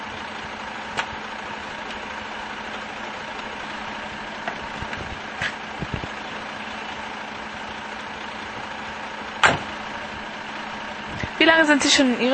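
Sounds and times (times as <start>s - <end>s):
long-distance haulage truck engine idling: 0.0s - 12.3s
loud clank: 9.4s - 9.8s
speech: 11.6s - 12.3s.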